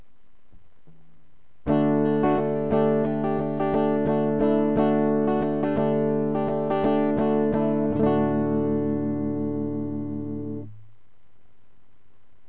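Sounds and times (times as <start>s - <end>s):
electric guitar with normal tone: 1.6s - 10.8s.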